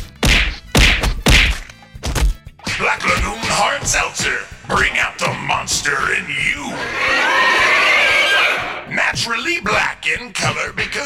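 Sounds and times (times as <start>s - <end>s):
person being hit: 0.1s - 3.2s
speech: 2.8s - 7.9s, 8.9s - 11.0s.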